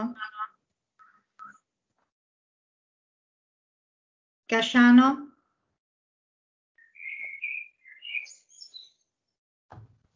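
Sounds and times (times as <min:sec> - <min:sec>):
speech: 0:00.0 - 0:00.4, 0:04.5 - 0:05.3
bird chirping in high tweets and trills: 0:06.8 - 0:09.3
short low thump: 0:09.7 - 0:10.0.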